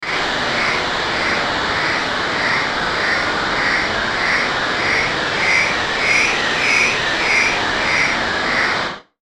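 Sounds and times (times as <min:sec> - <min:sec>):
ascending static pulse transition: 0:00.0 - 0:08.9.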